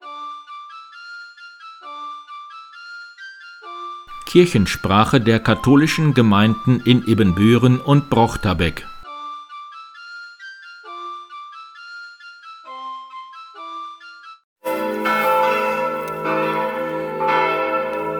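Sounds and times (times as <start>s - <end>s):
peal of several church bells clanging: 4.1s - 9.0s, 14.6s - 18.1s
speech: 4.3s - 8.9s.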